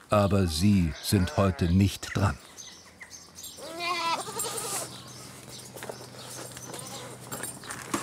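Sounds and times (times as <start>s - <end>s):
speech: 0.1s - 2.5s
faint scattered animal sounds: 0.1s - 7.4s
goat bleating near a feed bucket: 0.2s - 2.0s, 3.6s - 5.1s
shuffling, rustling farmyard noise: 4.6s - 8.0s.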